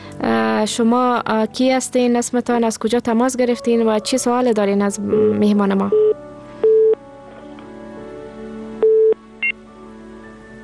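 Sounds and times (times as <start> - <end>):
speech: 0.6 - 6.2
telephone signal beeps after a failed call: 5.2 - 7.0, 8.8 - 9.6.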